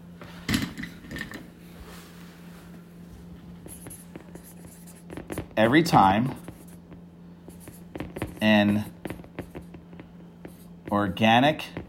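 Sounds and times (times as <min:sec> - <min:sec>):
steady low hum: 0:00.0 - 0:11.8
pen scratching on paper, writing by hand: 0:03.6 - 0:11.8
speech: 0:05.6 - 0:06.4, 0:08.4 - 0:08.9, 0:10.9 - 0:11.8.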